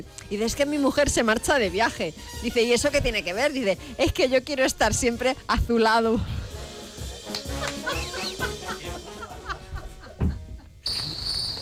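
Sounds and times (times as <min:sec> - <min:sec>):
speech: 0:00.0 - 0:06.4
laughter: 0:07.1 - 0:11.1
cricket chirping: 0:10.8 - 0:11.6.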